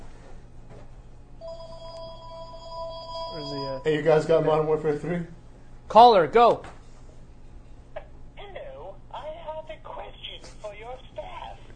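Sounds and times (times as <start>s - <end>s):
low hum: 0.0s - 11.7s
telephone ringing with an incoming call: 1.4s - 4.2s
speech: 3.4s - 6.8s.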